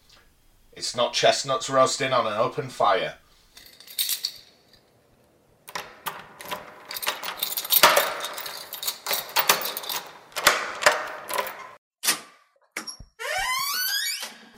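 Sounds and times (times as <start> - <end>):
speech: 0.8 - 3.2
clanking rattling metallic mechanism of heavy hall doors: 5.7 - 11.8
heavy doors of a hall of fame creaking open: 5.7 - 11.8, 12.8 - 14.5.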